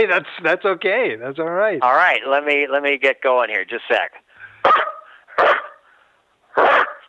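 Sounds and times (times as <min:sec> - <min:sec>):
speech: 0:00.0 - 0:05.5
person imitating dog barking: 0:04.6 - 0:05.8, 0:06.5 - 0:07.0.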